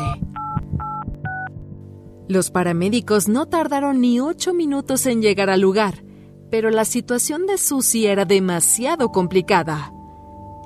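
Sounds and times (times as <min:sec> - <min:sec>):
telephone keypad tones as 911 is dialed: 0:00.0 - 0:01.5
speech: 0:02.3 - 0:10.0.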